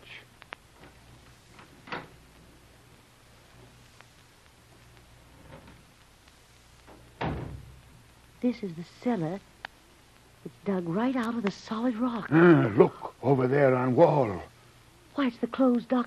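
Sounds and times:
low steady hum: 0.0s - 16.0s
door being opened with clicks and creaks: 0.8s - 2.2s, 5.3s - 5.8s
speech: 8.4s - 9.5s, 10.6s - 14.5s, 15.2s - 16.0s.

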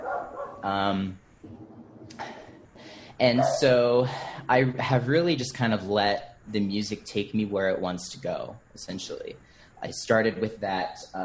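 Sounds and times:
dog barking in a home: 0.0s - 0.7s, 3.2s - 3.8s
speech: 0.6s - 1.2s, 3.2s - 11.2s.

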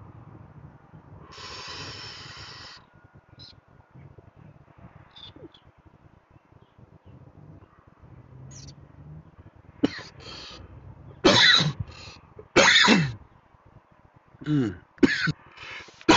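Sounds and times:
person coughing harshly: 9.8s - 10.2s, 11.3s - 11.8s, 12.6s - 13.2s, 14.4s - 15.4s
person clearing their throat: 14.4s - 15.4s.

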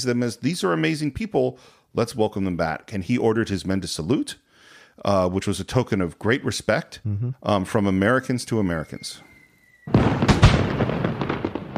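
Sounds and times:
speech: 0.0s - 4.4s, 5.0s - 9.3s
fireworks exploding with crackling pops and booms: 9.8s - 11.7s.

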